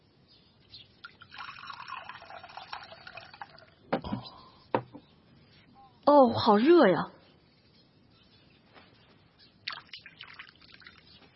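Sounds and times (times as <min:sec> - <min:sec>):
water pouring into a cup: 0:01.0 - 0:03.8, 0:09.7 - 0:11.2
speech: 0:06.1 - 0:07.2.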